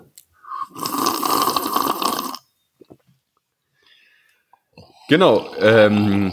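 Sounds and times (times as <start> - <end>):
loud slurp of tea at Schliersee: 0.4 - 2.4
speech: 5.1 - 6.3.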